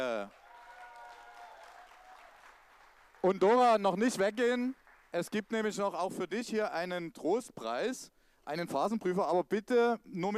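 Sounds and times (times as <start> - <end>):
audience applause during a prize-giving: 0.3 - 5.4
speech: 3.2 - 10.3.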